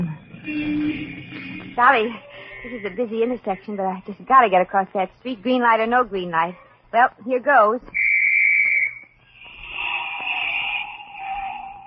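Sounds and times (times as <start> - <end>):
speech: 1.8 - 8.0
police whistle blast: 8.0 - 9.1
warbling sustained whistle tone: 8.0 - 11.8.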